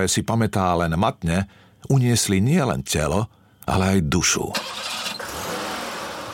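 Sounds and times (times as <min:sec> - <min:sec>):
speech: 0:00.0 - 0:04.9
car engine starting in a parking lot: 0:04.5 - 0:06.3.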